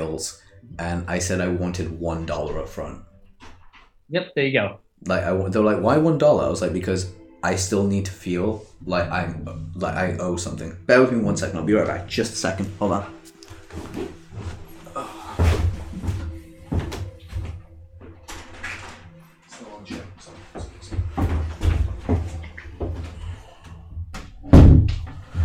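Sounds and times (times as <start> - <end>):
speech: 0.1 - 3.5, 4.1 - 15.5
door opening and closing as friends arrive: 1.7 - 4.0, 15.4 - 25.4.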